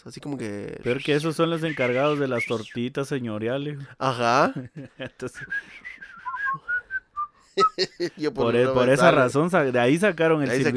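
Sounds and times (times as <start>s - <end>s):
speech: 0.0s - 6.6s, 7.6s - 10.7s
laughter: 4.5s - 5.5s, 7.6s - 8.3s
person whistling a short melodic phrase: 5.4s - 7.8s.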